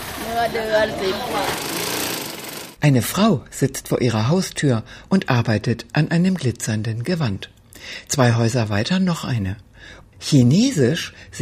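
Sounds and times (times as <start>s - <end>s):
voices chattering faintly: 0.0s - 2.5s
sewing machines whirring and rattling: 0.0s - 2.8s
speech: 0.3s - 1.8s, 2.8s - 11.3s.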